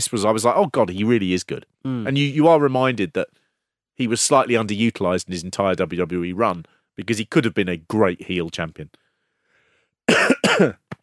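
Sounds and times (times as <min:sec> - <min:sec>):
speech: 0:00.0 - 0:03.4, 0:04.0 - 0:09.0, 0:10.1 - 0:10.8
harsh raspy coughs: 0:10.1 - 0:10.9.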